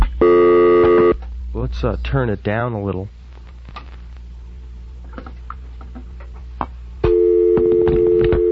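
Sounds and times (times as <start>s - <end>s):
telephone line tone while dialing an outside call: 0.2s - 1.2s, 7.0s - 8.5s
speech: 1.7s - 3.8s.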